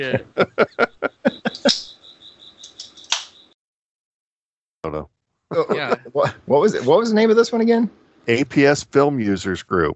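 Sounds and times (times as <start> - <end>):
speech: 0.0 - 0.9, 6.5 - 9.9
laughter: 0.0 - 1.9, 5.5 - 6.9
crickets chirping: 1.0 - 3.6
sharp clicks: 2.6 - 3.6.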